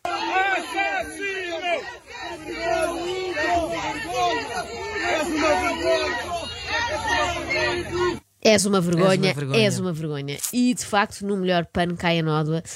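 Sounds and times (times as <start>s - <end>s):
large crowd of protesters shouting together: 0.0s - 8.3s
speech: 8.5s - 12.7s.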